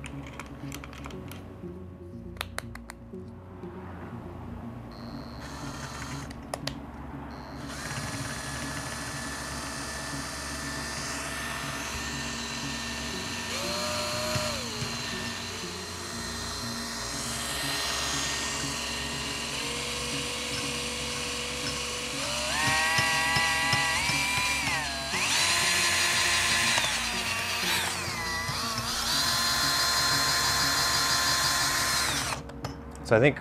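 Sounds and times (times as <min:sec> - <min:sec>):
steady mechanical hum: 0:04.8 - 0:33.3
power drill whining: 0:05.2 - 0:06.4, 0:07.4 - 0:32.5.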